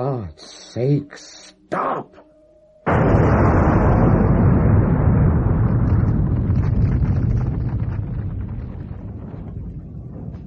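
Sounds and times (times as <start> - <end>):
speech: 0.0 - 2.2
explosion blowing apart a cathedral: 2.9 - 10.4.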